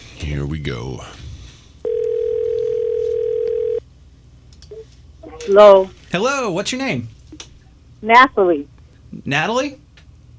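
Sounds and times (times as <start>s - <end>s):
speech: 0.2s - 1.3s, 5.5s - 7.2s, 8.0s - 9.8s
telephone line electronic ringback tone: 1.8s - 3.8s.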